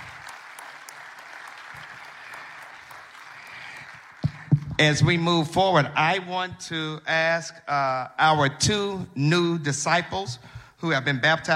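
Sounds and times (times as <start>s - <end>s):
church audience applauding: 0.0s - 4.9s
speech: 4.8s - 11.5s.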